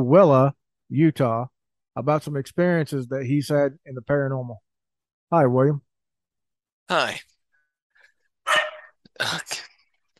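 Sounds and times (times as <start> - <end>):
speech: 0.0 - 4.6, 5.3 - 5.9, 6.9 - 7.3, 9.2 - 9.7
dog barking: 8.5 - 9.0.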